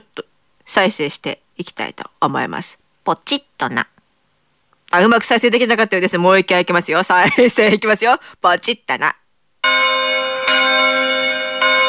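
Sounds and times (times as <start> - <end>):
speech: 0.7 - 3.9, 4.9 - 9.2
large bell tolling: 9.6 - 11.8.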